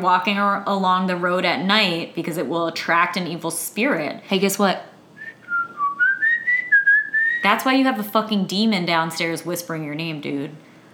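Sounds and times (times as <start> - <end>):
speech: 0.0 - 4.9, 7.4 - 10.7
person whistling a short wavering tune: 5.2 - 7.5.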